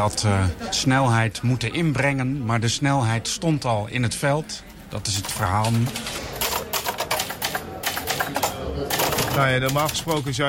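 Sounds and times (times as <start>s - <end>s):
speech: 0.0s - 6.2s, 9.4s - 10.4s
typing on a typewriter: 5.3s - 10.3s.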